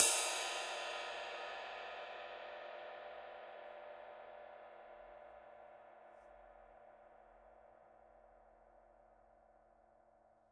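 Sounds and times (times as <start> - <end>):
Paiste Twenty Masters dark crisp ride cymbal: 0.0 - 5.2.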